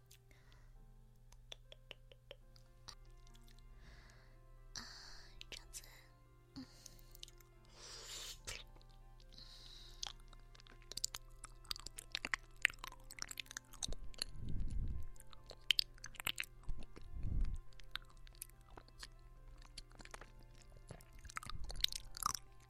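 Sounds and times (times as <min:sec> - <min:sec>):
person eating food in small bites and chewing quietly: 0:01.4 - 0:03.7, 0:06.8 - 0:22.6
dull low thumps: 0:13.8 - 0:15.4, 0:16.6 - 0:18.0.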